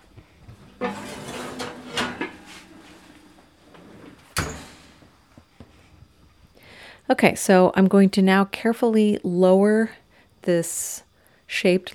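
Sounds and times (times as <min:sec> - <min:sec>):
heavy Dutch oven clunking and scraping as it is pulled from a home kitchen oven: 0:00.6 - 0:05.2
speech: 0:07.1 - 0:11.9.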